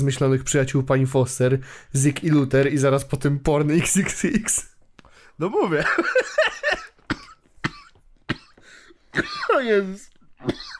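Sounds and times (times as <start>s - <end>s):
speech: 0.0s - 4.7s, 5.4s - 6.7s, 9.2s - 10.7s
person coughing in a coughing fit: 6.7s - 9.8s, 10.4s - 10.7s
person gasping between coughs: 8.5s - 9.1s.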